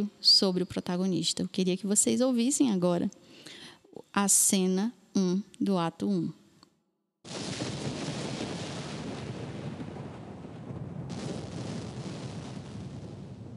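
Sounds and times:
speech: 0.0s - 6.4s, 7.2s - 7.5s
heavy roll of thunder on an open plain: 7.3s - 13.5s.

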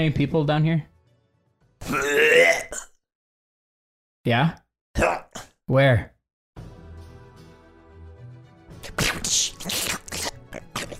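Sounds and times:
speech: 0.0s - 0.9s, 1.8s - 2.9s, 4.2s - 5.1s, 5.7s - 6.1s, 8.9s - 9.8s
person imitating a frog-like creature's belch: 1.9s - 3.0s, 8.9s - 10.9s.

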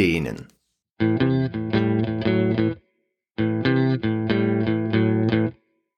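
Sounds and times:
speech: 0.0s - 1.2s
overdriven electric guitar playing a bluesy riff as a warm-up exercise: 1.0s - 2.8s, 3.4s - 5.6s.

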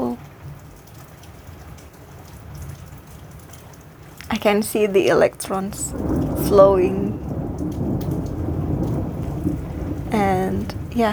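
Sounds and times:
steady rainfall: 0.0s - 11.1s
thunder rumbling during rainstorm: 3.8s - 11.1s
speech: 4.4s - 7.2s, 10.1s - 11.1s.

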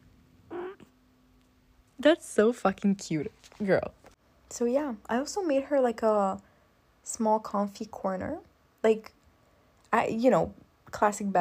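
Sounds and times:
sleeping cat chirping when touched on the belly: 0.5s - 0.9s
speech: 2.0s - 6.5s, 7.1s - 9.2s, 9.9s - 11.3s.

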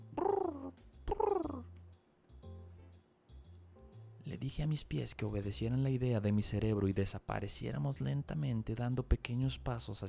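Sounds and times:
pigeons cooing: 0.1s - 1.7s
speech: 4.3s - 10.0s.

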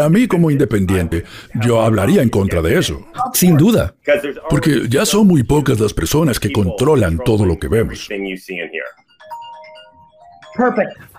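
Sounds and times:
speech: 0.0s - 9.1s, 10.6s - 11.1s
short electronic telephone ring: 8.9s - 11.1s.

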